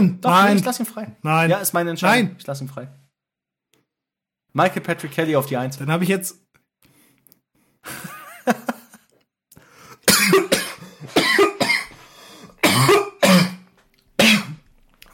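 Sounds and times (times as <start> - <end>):
speech: 0.0 - 3.0, 4.5 - 6.5
person coughing harshly and clearing throat from anger: 10.0 - 12.0, 12.6 - 14.7.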